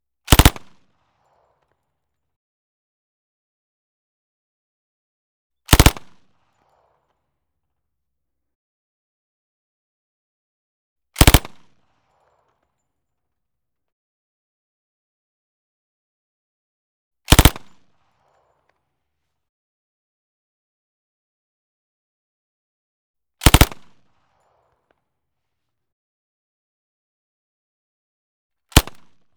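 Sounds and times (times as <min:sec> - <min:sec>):
Thompson 1928A1 automatic submachine gun firing a burst: 0:00.3 - 0:00.6, 0:05.7 - 0:06.1, 0:11.2 - 0:11.6, 0:17.3 - 0:17.7, 0:23.4 - 0:23.9, 0:28.7 - 0:29.0.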